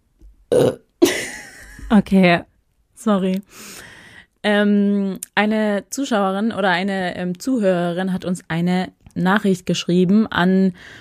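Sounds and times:
speech: 0:00.5 - 0:00.8, 0:01.9 - 0:11.0
loud throaty belches: 0:00.5 - 0:00.9
person burping: 0:00.5 - 0:00.9.

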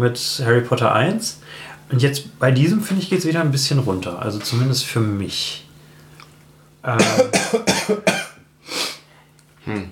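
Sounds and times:
speech: 0:00.0 - 0:05.7, 0:06.8 - 0:08.1, 0:09.7 - 0:09.9
harsh fit of coughing: 0:07.0 - 0:08.4.

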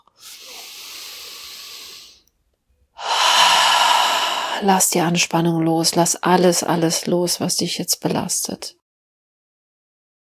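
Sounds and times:
deep slow breathing in and out: 0:00.1 - 0:02.2, 0:03.0 - 0:04.7
speech: 0:04.6 - 0:08.8.

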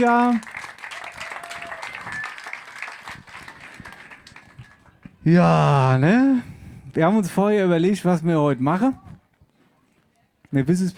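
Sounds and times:
speech: 0:00.0 - 0:00.5, 0:05.2 - 0:09.0, 0:10.5 - 0:10.9
crowd applauding: 0:00.0 - 0:05.1
faint whistle or cheer: 0:01.1 - 0:02.6.

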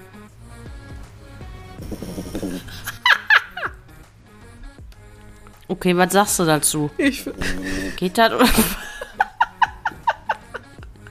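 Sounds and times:
pet snoring loudly: 0:01.4 - 0:03.0
pet's quieter wheezy breathing: 0:01.6 - 0:03.1, 0:07.4 - 0:08.0
pet's squeaky snorts: 0:01.8 - 0:03.0
laughter: 0:02.3 - 0:03.8, 0:07.0 - 0:11.0
speech: 0:05.7 - 0:08.8.

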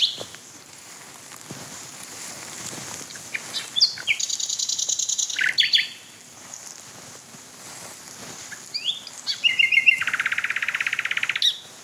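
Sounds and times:
male Common Nightingale singing in fields with trees: 0:00.0 - 0:00.3, 0:03.1 - 0:06.7, 0:08.5 - 0:11.7.

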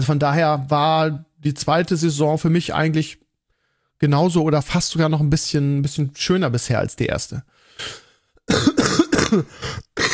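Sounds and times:
speech: 0:00.0 - 0:03.2, 0:04.0 - 0:09.8
person coughing hard: 0:07.8 - 0:10.1.

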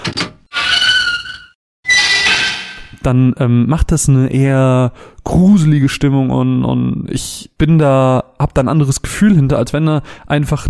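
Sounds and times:
rusty door creaking: 0:00.0 - 0:03.0
speech: 0:03.0 - 0:10.6.

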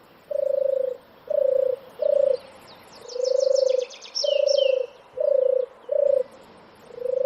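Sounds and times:
small bird chirping: 0:00.0 - 0:07.2
wild European turtle dove purring call: 0:00.0 - 0:07.2.

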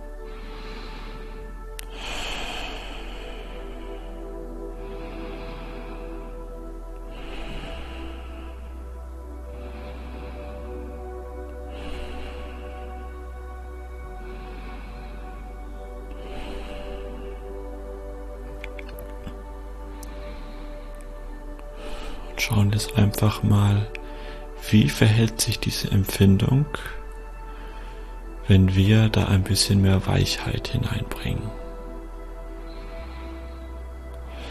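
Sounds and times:
deep breathing in through the nose, out through the mouth: 0:00.0 - 0:34.5
steady tonal background: 0:00.0 - 0:34.5
speech: 0:22.5 - 0:24.0, 0:24.7 - 0:27.0, 0:28.5 - 0:31.6.

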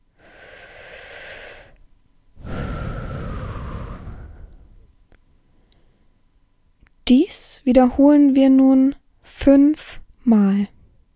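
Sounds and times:
deep breathing in and out: 0:00.0 - 0:01.8, 0:02.4 - 0:04.9
speech: 0:07.1 - 0:10.8.

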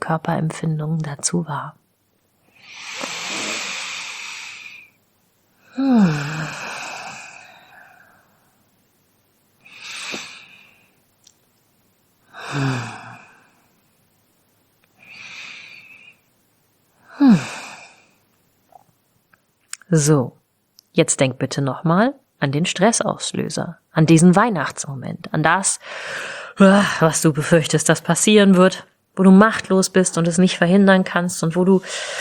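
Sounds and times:
speech: 0:00.1 - 0:01.8, 0:05.8 - 0:06.7, 0:19.9 - 0:20.4, 0:21.0 - 0:32.2
slow deep breaths during a guided relaxation exercise: 0:02.4 - 0:05.0, 0:05.6 - 0:08.7, 0:09.6 - 0:11.0, 0:12.3 - 0:13.8, 0:15.0 - 0:16.3, 0:17.0 - 0:18.2, 0:25.8 - 0:26.6, 0:31.8 - 0:32.2.

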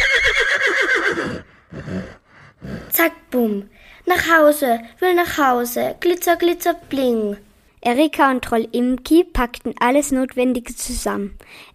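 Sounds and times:
horse neighing loudly: 0:00.0 - 0:02.9
horse snorting softly: 0:00.4 - 0:03.0
speech: 0:03.0 - 0:11.7.

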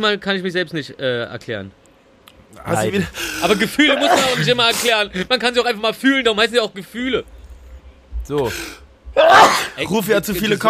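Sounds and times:
speech: 0:00.0 - 0:01.8, 0:02.5 - 0:07.3, 0:08.2 - 0:10.6
person sneezing: 0:03.9 - 0:04.9, 0:09.2 - 0:09.8.

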